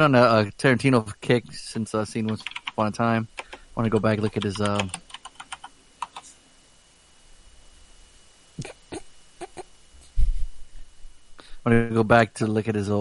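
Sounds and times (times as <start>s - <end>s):
speech: 0.0s - 5.0s, 11.6s - 12.9s
computer keyboard typing: 2.2s - 2.8s, 3.4s - 6.3s.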